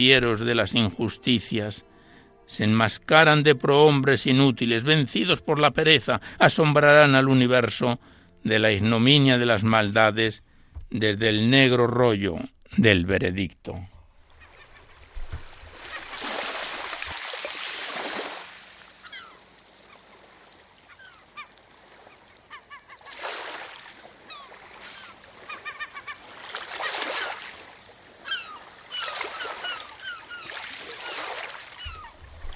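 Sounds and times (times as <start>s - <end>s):
speech: 0.0s - 1.9s, 2.5s - 13.9s
seagulls calling in squawking bursts: 14.2s - 17.0s, 18.8s - 32.5s
waves surging and breaking: 14.2s - 32.5s.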